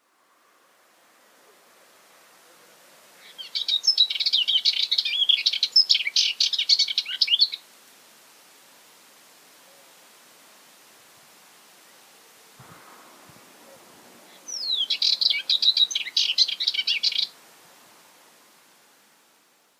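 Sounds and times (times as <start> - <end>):
subalpine warbler calling: 3.2 - 7.6, 12.7 - 17.4.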